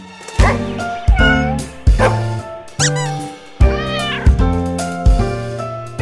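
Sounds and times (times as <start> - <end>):
cat meowing loudly: 0.5 - 4.4.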